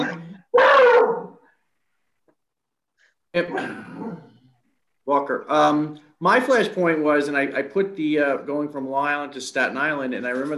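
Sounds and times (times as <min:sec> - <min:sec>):
dog barking roughly: 0:00.5 - 0:01.4
speech: 0:03.3 - 0:04.3, 0:05.1 - 0:10.5.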